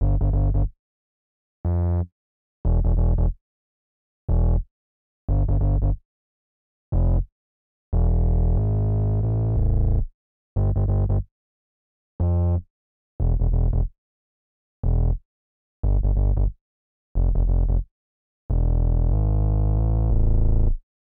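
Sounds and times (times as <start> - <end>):
bass groove: 0.0 - 0.7, 2.7 - 3.4, 4.3 - 4.7, 5.3 - 6.0, 6.9 - 7.3, 8.0 - 11.3, 13.2 - 13.9, 14.8 - 15.2, 15.8 - 16.6, 17.2 - 17.9, 18.5 - 20.8.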